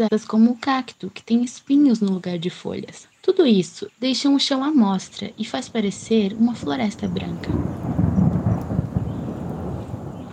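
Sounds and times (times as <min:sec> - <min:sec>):
speech: 0:00.0 - 0:07.9
deep rolling thunder: 0:05.4 - 0:10.3
heavy rain in the caatinga biome: 0:05.5 - 0:10.3.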